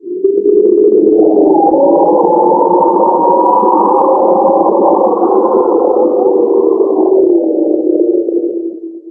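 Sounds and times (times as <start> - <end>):
wind moaning: 0.0 - 9.1.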